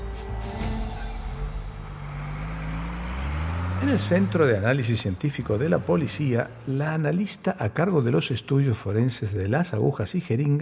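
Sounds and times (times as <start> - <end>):
bus engine droning while driving along a road: 0.0 - 8.4
rushing road noise of a bus: 0.5 - 8.6
speech: 3.8 - 10.6.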